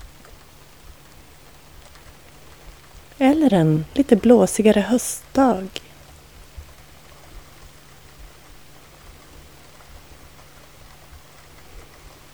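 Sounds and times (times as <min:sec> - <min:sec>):
steady rain falling: 0:00.0 - 0:12.3
speech: 0:03.2 - 0:05.8.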